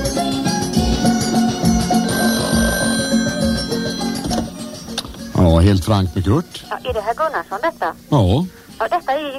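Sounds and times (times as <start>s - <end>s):
telephone ringing in a radio studio: 0.2s - 5.5s
speech: 5.6s - 9.3s.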